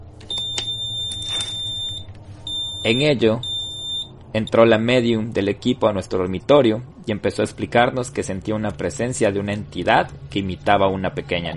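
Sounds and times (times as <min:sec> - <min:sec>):
low rumble: 0:00.0 - 0:11.5
high piercing electronic beep from a frequency-measuring machine in a bedroom: 0:00.3 - 0:04.2
speech: 0:02.8 - 0:03.5, 0:04.3 - 0:11.5.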